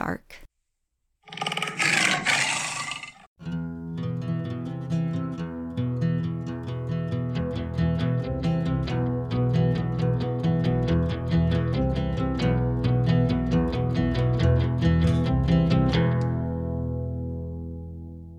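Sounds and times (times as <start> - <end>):
speech: 0.0 - 0.5
tiger roaring: 1.3 - 3.2
steady instrumental music: 3.4 - 18.3.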